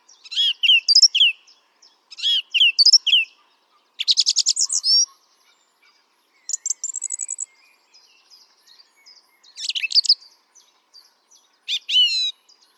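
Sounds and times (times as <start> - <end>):
song thrush Turdus philomelos singing: 0.0 - 12.7.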